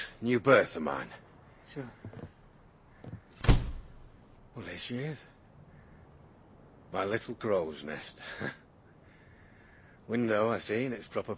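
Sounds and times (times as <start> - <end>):
speech: 0.2 - 2.3, 4.6 - 5.3, 6.9 - 8.6, 10.1 - 11.3
door closing gently: 3.4 - 3.9.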